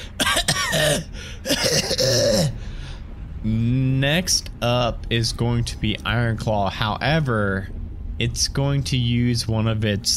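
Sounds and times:
person vocally imitating a creature coughing and choking: 0.2s - 2.6s
speech: 0.8s - 2.5s, 3.4s - 10.1s.

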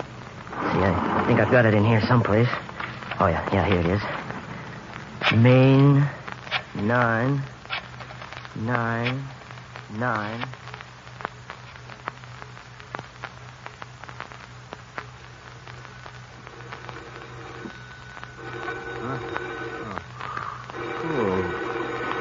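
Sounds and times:
low steady hum: 0.0s - 22.2s
speech: 1.3s - 4.2s, 5.3s - 6.2s, 6.8s - 7.6s, 8.6s - 10.6s
telephone ringing: 16.4s - 20.0s, 20.7s - 22.2s.

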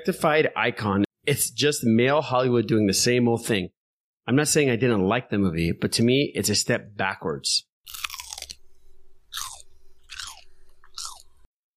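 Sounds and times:
speech: 0.0s - 8.0s
loud crunchy chewing of peanut butter chocolate candy: 7.9s - 11.5s.

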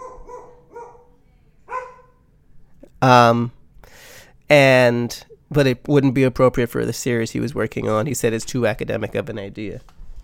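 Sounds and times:
dog barking: 0.0s - 2.2s
speech: 3.0s - 3.6s, 4.5s - 10.0s.

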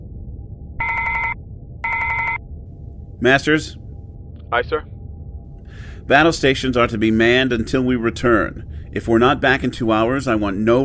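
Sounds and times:
low rumble: 0.0s - 10.8s
intercom phone ringing with an electronic trill: 0.8s - 2.4s
speech: 3.2s - 3.8s, 4.5s - 4.9s, 5.7s - 10.8s.

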